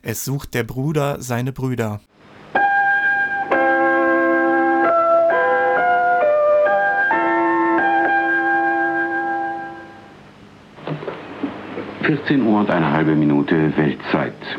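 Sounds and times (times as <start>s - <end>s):
speech: 0.0s - 2.4s, 12.1s - 14.5s
faint noise: 0.0s - 14.5s
chime-like bell tone interval signal melody of a German shortwave radio station: 2.6s - 10.1s.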